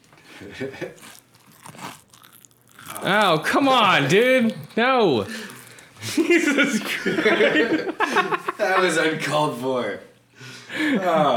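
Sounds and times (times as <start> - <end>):
laughter: 0.3 - 1.0, 6.0 - 9.2, 10.7 - 11.3
speech: 0.4 - 1.2, 3.0 - 5.4, 6.0 - 10.1, 10.7 - 11.3
loud crunchy chewing into the microphone: 0.7 - 6.9.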